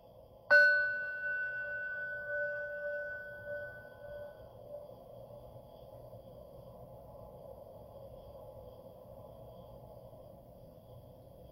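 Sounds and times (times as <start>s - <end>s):
single bell struck for a guided mindfulness exercise: 0.5s - 4.4s.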